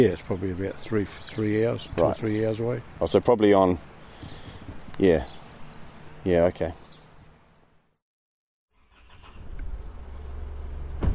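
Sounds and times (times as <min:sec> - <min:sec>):
speech: 0:00.0 - 0:04.4, 0:05.0 - 0:05.4, 0:06.2 - 0:06.8
ute engine driving up a hill: 0:09.4 - 0:11.1.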